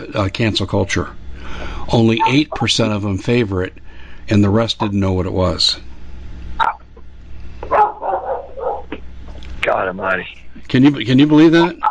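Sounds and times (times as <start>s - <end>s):
speech: 0.0s - 5.9s, 6.6s - 6.8s, 9.8s - 11.8s
low hum: 0.0s - 11.8s
short dog yelp: 6.6s - 6.8s, 7.7s - 8.9s
dogs barking: 6.6s - 7.0s, 7.6s - 9.0s.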